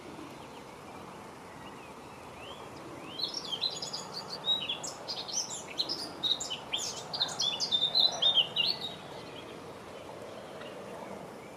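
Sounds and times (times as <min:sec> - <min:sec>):
constant background hiss: 0:00.0 - 0:11.5
blackcap singing a rich rapid warble: 0:02.4 - 0:09.5.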